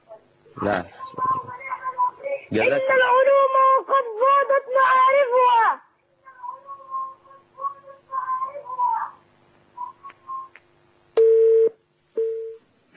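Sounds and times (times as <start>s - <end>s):
speech: 0.6s - 1.4s, 2.5s - 5.8s
telephone line tone signalling an incoming call: 11.2s - 12.6s.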